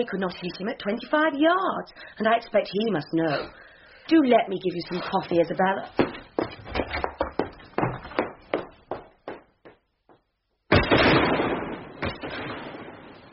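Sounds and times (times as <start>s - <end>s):
speech: 0.0s - 6.6s
gunshot fired into the air during a duel: 10.7s - 13.3s.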